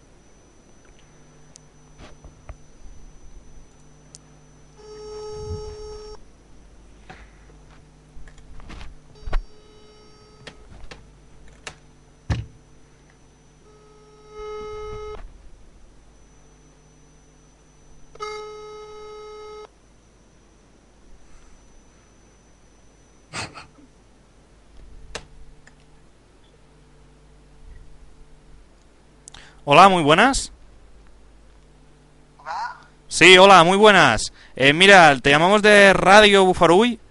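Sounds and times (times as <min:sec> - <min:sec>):
telephone ringback tone while a call is dialed out from a radio studio: 0:00.0 - 0:06.2, 0:09.1 - 0:10.8, 0:12.2 - 0:15.2, 0:16.2 - 0:19.7
low steady hum: 0:00.0 - 0:37.1
speech: 0:29.6 - 0:30.6, 0:33.2 - 0:37.0.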